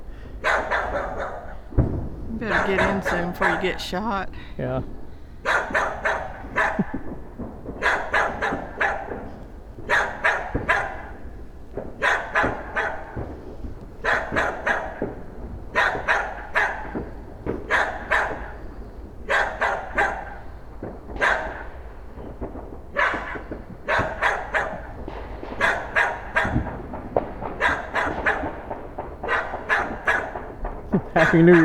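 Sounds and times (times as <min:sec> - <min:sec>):
dog barking: 0:00.4 - 0:01.7, 0:02.4 - 0:03.6, 0:05.4 - 0:07.0, 0:07.8 - 0:11.2, 0:12.0 - 0:13.3, 0:14.0 - 0:18.6, 0:19.2 - 0:20.4, 0:21.2 - 0:21.8, 0:22.9 - 0:26.8, 0:27.5 - 0:28.6, 0:29.2 - 0:30.6, 0:31.2 - 0:31.6
speech: 0:02.4 - 0:05.0, 0:31.4 - 0:31.6.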